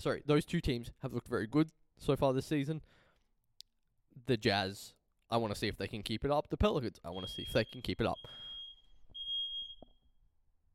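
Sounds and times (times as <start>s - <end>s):
speech: 0.0s - 3.0s, 4.2s - 8.5s
fire alarm sounding a high-pitched beep: 7.1s - 10.1s.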